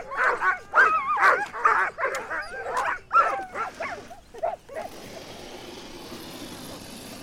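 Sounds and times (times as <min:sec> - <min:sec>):
sled dog team barking and yipping on an ice road: 0:00.0 - 0:05.3.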